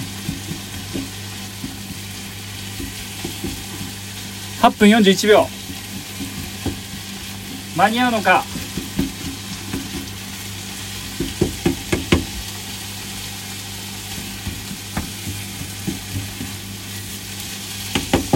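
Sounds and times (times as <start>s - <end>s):
utensil scraping and knocking against the frying pan: 0.0s - 4.1s, 5.5s - 7.8s, 8.4s - 10.2s, 11.0s - 12.4s, 14.0s - 17.2s, 17.8s - 18.3s
ingredients seasoned with sake, soy sauce and fish sauce sizzling in a hot frying pan: 0.0s - 18.3s
speech: 4.6s - 5.6s, 7.8s - 8.5s.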